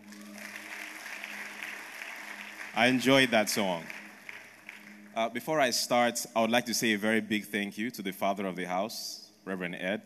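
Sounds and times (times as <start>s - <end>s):
audience at a church service clapping for a choir: 0.0s - 5.7s
speech: 2.8s - 4.0s, 5.2s - 10.0s.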